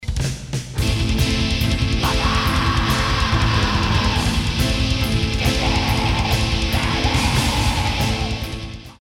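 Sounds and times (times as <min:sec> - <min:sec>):
piano riff: 0:00.8 - 0:08.8.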